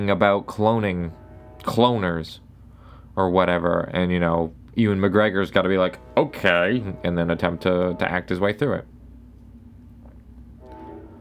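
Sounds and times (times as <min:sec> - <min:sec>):
speech: 0:00.0 - 0:02.4, 0:03.2 - 0:08.9
train horn-like tone: 0:00.0 - 0:03.0, 0:05.6 - 0:08.9, 0:10.6 - 0:11.1
train passing by: 0:00.0 - 0:11.1.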